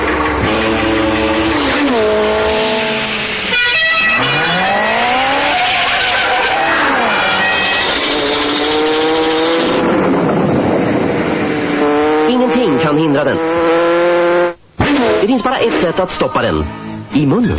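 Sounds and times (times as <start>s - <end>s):
car tires squealing and skidding: 0.0s - 9.8s
car engine revving while driving hard: 0.0s - 16.0s
speech: 16.0s - 17.5s.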